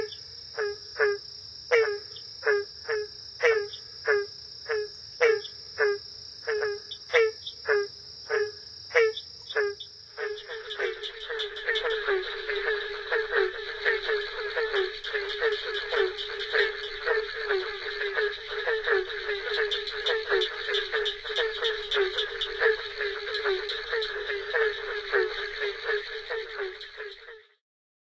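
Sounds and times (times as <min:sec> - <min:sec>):
barking treefrogs calling together in a dense chorus in North America: 0:00.0 - 0:27.6.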